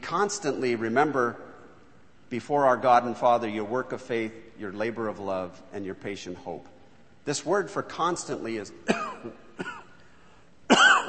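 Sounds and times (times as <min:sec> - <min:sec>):
speech: 0:00.1 - 0:01.5, 0:02.3 - 0:09.8
preacher coughing during a sermon: 0:08.8 - 0:10.0, 0:10.7 - 0:11.0.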